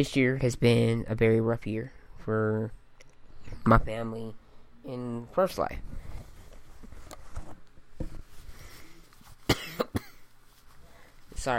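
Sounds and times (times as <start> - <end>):
speech: 0.0 - 2.8, 3.6 - 6.0
quiet sounds: 1.8 - 11.5
person getting over a cold coughing: 9.5 - 10.3.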